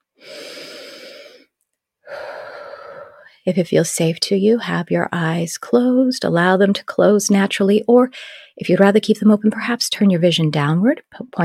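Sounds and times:
deep breathing during a guided meditation exercise: 0.2s - 3.3s, 8.2s - 8.6s
speech: 3.4s - 11.4s.

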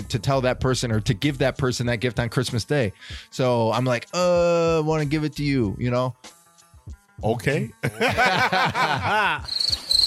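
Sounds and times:
speech: 0.1s - 6.4s, 7.2s - 9.8s
laughter: 7.8s - 9.5s
crickets chirping: 9.5s - 10.0s.

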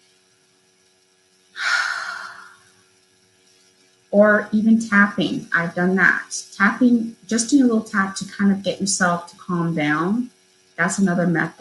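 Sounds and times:
deep breath taken to ease stress: 1.6s - 2.8s
speech: 4.1s - 11.6s.

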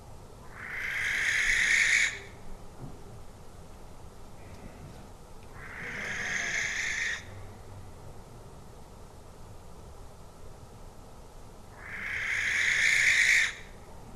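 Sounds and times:
outdoor hiss: 0.0s - 14.1s
barn owl screeching calls: 0.4s - 2.4s, 5.6s - 7.3s, 11.8s - 13.8s.

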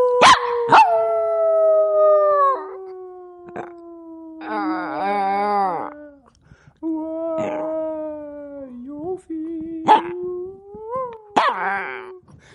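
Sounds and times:
small young dog giving grunting howls: 0.1s - 6.3s, 7.0s - 8.5s, 9.8s - 12.2s.

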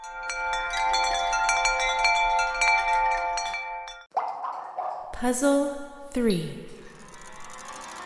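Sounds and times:
wind chimes tinkling with bright metallic tones: 0.0s - 4.1s
speech: 5.2s - 6.8s.

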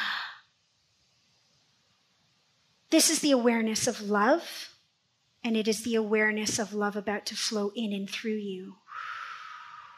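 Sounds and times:
deep breath in: 0.0s - 0.4s, 8.9s - 9.9s
speech: 2.9s - 4.7s, 5.4s - 9.1s.

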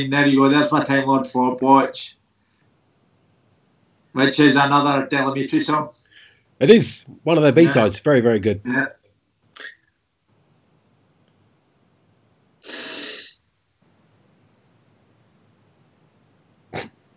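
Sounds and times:
speech: 0.0s - 2.2s, 4.2s - 6.0s, 6.6s - 9.0s
big loud sniff: 12.6s - 13.4s, 16.7s - 17.0s.

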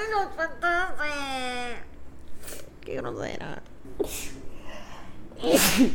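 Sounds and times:
speech: 0.0s - 1.9s, 2.9s - 4.4s, 5.4s - 5.9s
person sneezing: 4.0s - 4.4s, 5.4s - 5.9s.

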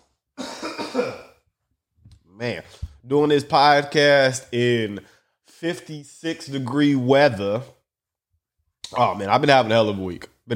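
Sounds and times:
harsh cough: 0.4s - 1.4s
speech: 2.4s - 7.8s, 8.9s - 10.5s.

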